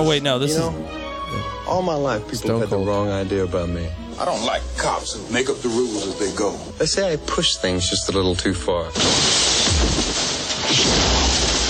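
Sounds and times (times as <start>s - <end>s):
speech: 0.0s - 10.0s
clattering debris: 9.0s - 11.6s
glass shattering: 9.0s - 11.6s
man thrown through a glass window during a fight: 9.0s - 11.6s.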